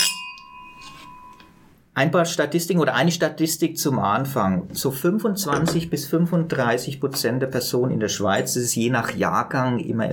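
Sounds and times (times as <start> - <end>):
wine glasses of Swiss white wine clinking in a toast: 0.0 - 1.6, 5.5 - 5.9
speech: 2.0 - 10.1.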